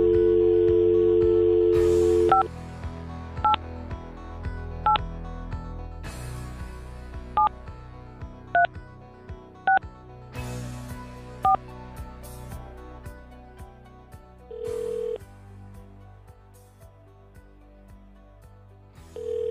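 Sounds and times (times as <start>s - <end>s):
touch-tone beeps from a phone keypad being dialed: 0.0s - 2.5s
music: 0.0s - 19.4s.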